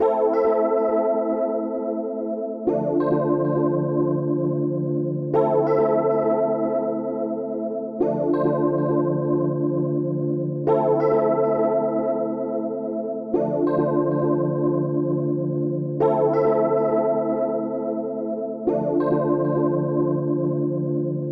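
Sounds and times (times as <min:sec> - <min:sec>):
Rhodes electric piano loop from Am to Dm: 0:00.0 - 0:21.3.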